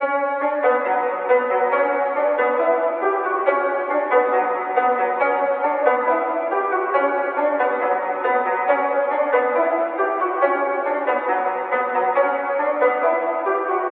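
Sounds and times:
trap drill synth melody at 138 bpm in B: 0:00.0 - 0:13.8.

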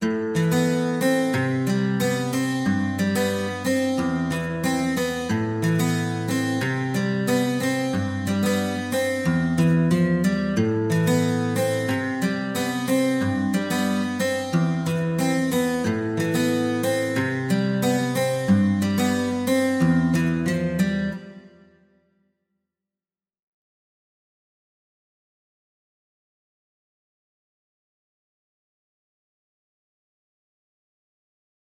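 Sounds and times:
acoustic guitar loop in A minor: 0:00.0 - 0:21.8.

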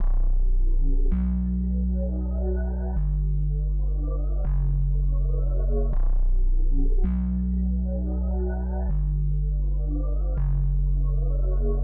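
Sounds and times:
162 bpm bass line: 0:00.0 - 0:11.8.

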